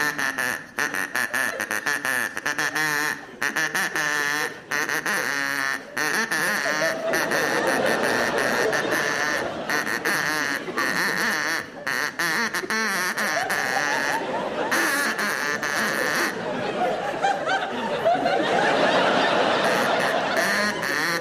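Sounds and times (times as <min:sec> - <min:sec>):
person imitating a duck quacking: 0:00.0 - 0:16.4, 0:19.6 - 0:21.2
laughter: 0:01.1 - 0:04.0, 0:04.9 - 0:21.2.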